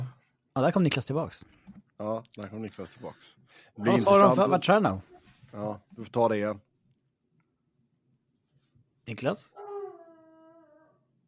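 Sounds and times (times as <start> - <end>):
speech: 0.6 - 6.7, 9.1 - 9.6
dog howling: 9.5 - 11.1.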